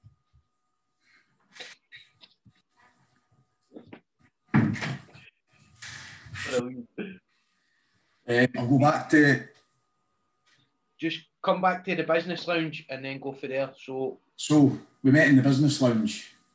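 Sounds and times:
door pushed shut: 0:04.6 - 0:05.1
speech: 0:08.3 - 0:09.5, 0:11.0 - 0:16.3.

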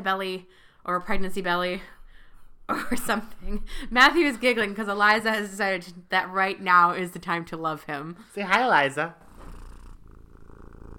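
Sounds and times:
speech: 0:00.0 - 0:02.0, 0:02.7 - 0:09.2
cat purring: 0:09.2 - 0:10.9.

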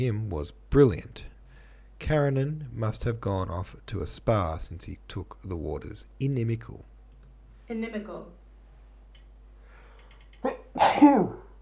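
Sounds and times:
speech: 0:00.0 - 0:01.3, 0:02.0 - 0:06.9, 0:07.7 - 0:08.4, 0:10.4 - 0:11.4
person sneezing: 0:10.4 - 0:11.5.

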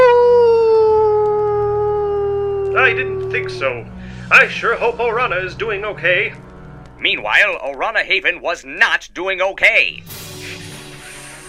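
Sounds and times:
dog howling in one long falling cry: 0:00.0 - 0:03.6
speech: 0:02.9 - 0:06.4, 0:07.0 - 0:10.3.

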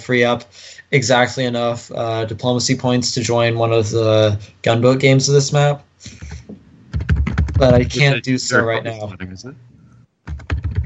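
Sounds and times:
speech: 0:00.0 - 0:06.4, 0:07.6 - 0:09.7
rapid heavy typing on a computer keyboard: 0:06.2 - 0:07.8, 0:10.3 - 0:10.8.

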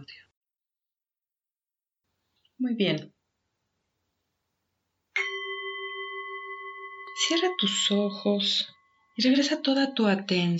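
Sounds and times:
speech: 0:02.6 - 0:03.2, 0:07.2 - 0:10.5
meditation gong being struck: 0:05.2 - 0:08.9.

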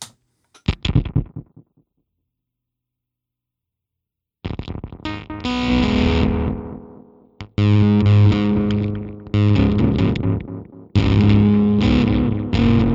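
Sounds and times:
guitar fuzz pedal played through a delay: 0:00.0 - 0:01.6, 0:04.5 - 0:12.9.

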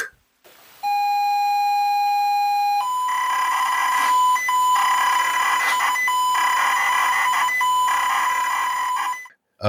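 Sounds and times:
ZX Spectrum tape loading pilot tone: 0:00.8 - 0:09.3
ZX Spectrum tape loading buzzing warbling data noise: 0:02.9 - 0:09.3.

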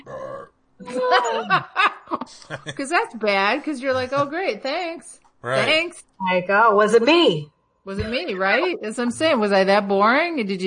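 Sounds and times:
person burping loudly: 0:00.0 - 0:01.6, 0:04.0 - 0:04.2
laughter: 0:00.8 - 0:03.0, 0:03.9 - 0:04.3
speech: 0:00.8 - 0:10.6.

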